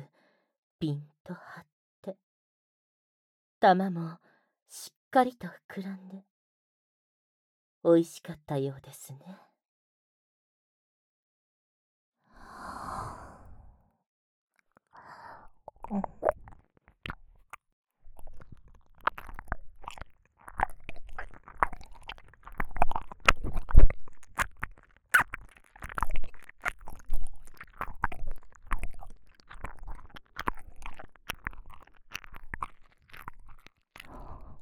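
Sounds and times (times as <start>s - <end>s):
speech: 0.8s - 2.2s, 3.6s - 6.3s, 7.8s - 9.4s, 15.9s - 16.2s
wet chewing with crunchy and squishy bites: 14.6s - 34.6s.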